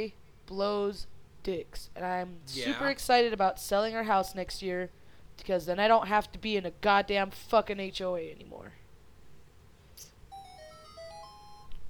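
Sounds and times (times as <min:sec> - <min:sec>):
speech: 0:00.0 - 0:08.8
low hum: 0:00.0 - 0:11.8
mobile phone ringtone playing an electronic melody: 0:10.3 - 0:11.8.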